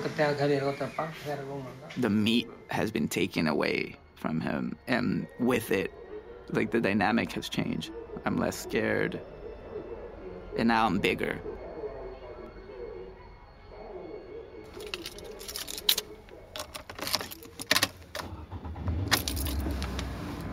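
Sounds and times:
speech: 0:00.2 - 0:09.3, 0:10.6 - 0:11.5
keys jangling and clinking: 0:14.7 - 0:18.4, 0:19.1 - 0:20.4.

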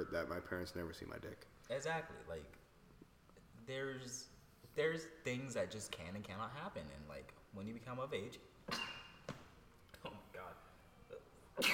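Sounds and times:
speech: 0:00.0 - 0:02.6, 0:03.7 - 0:08.9
person sneezing: 0:08.7 - 0:09.2, 0:11.6 - 0:11.7.

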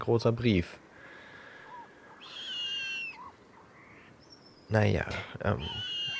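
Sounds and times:
speech: 0:00.0 - 0:00.8, 0:04.7 - 0:06.0
quiet hiss: 0:00.0 - 0:06.1
owl screeching call: 0:01.6 - 0:04.7, 0:05.4 - 0:06.1.

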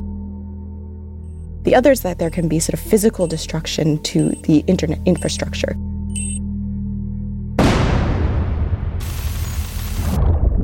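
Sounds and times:
low hum: 0:00.0 - 0:10.6
speech: 0:01.6 - 0:06.3
shelling and explosions: 0:07.6 - 0:10.6.

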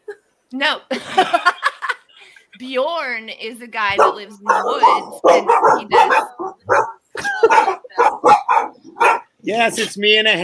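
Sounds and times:
speech: 0:00.5 - 0:01.5, 0:02.6 - 0:06.4, 0:09.5 - 0:10.4
laughter: 0:00.9 - 0:02.5, 0:07.2 - 0:08.2
dog barking: 0:04.0 - 0:09.3.

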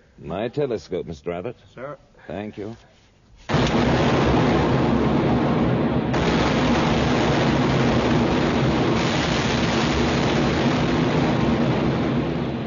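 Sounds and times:
speech: 0:00.2 - 0:04.3
naval ship cannons firing a broadside: 0:03.5 - 0:12.6.

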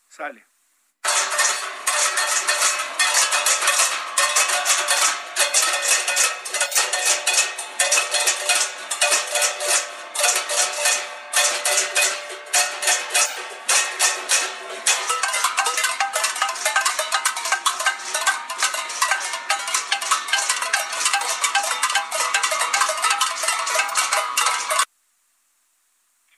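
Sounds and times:
speech: 0:00.2 - 0:00.5
protest crowd banging many pots and pans: 0:01.0 - 0:24.9.

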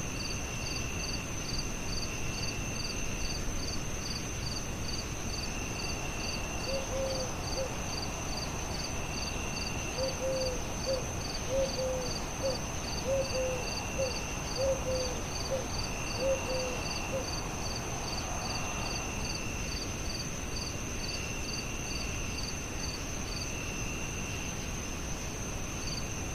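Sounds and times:
night crickets trilling: 0:00.0 - 0:26.3
owl hooting: 0:06.7 - 0:07.8, 0:10.0 - 0:17.3.

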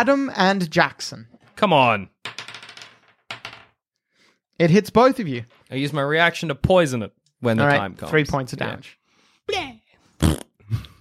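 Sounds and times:
speech: 0:00.0 - 0:02.1, 0:04.6 - 0:10.8
person blowing a wet raspberry-like fart noise with their mouth: 0:10.2 - 0:10.9.

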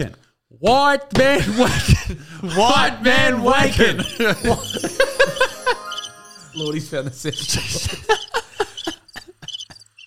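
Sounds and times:
speech: 0:00.0 - 0:05.1, 0:06.6 - 0:08.4
laughter: 0:01.4 - 0:05.9, 0:06.6 - 0:09.5
crickets chirping: 0:04.6 - 0:10.0.

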